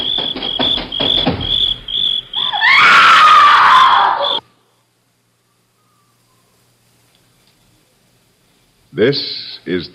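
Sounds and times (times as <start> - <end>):
crickets chirping at night: 0.0 - 8.8
woman screaming: 2.4 - 4.4
speech: 9.0 - 9.9.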